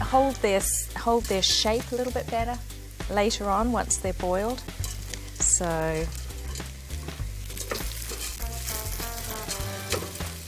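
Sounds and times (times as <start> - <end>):
red lentils frying in a hot pan: 0.0 - 10.4
speech: 0.1 - 4.8, 5.6 - 6.2
utensil scraping and stirring lentils in a pan: 4.5 - 10.4.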